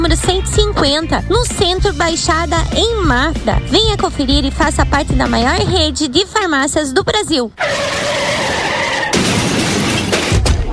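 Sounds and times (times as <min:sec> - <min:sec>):
speech: 0:00.1 - 0:08.5
tires screeching: 0:07.6 - 0:10.1
car crashing into another car: 0:07.6 - 0:10.7
glass shattering: 0:09.1 - 0:10.6.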